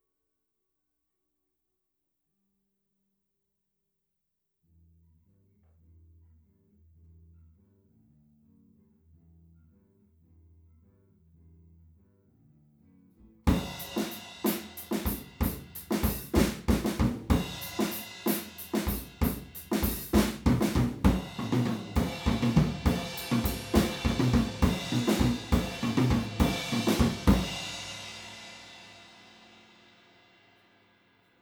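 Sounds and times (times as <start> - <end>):
drums recorded with a PZM omni microphone: 13.5 - 30.9.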